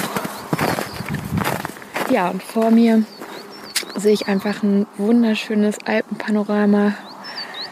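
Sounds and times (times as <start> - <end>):
footsteps crunching through deep snow in an Alpine landscape: 0.0 - 4.3
birds singing: 0.0 - 7.7
speech: 2.1 - 3.2, 4.0 - 7.0.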